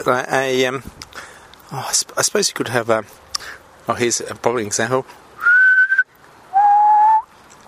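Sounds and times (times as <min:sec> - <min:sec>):
speech: 0:00.0 - 0:01.0, 0:01.7 - 0:05.2
person whistling clear single-pitch notes: 0:05.4 - 0:07.3.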